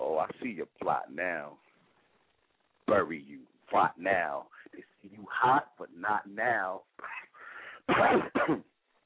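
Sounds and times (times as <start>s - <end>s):
speech: 0.2s - 1.7s, 2.9s - 7.2s, 7.9s - 8.7s
harsh coughs: 7.8s - 8.7s
raspy throat clearing: 7.9s - 8.7s.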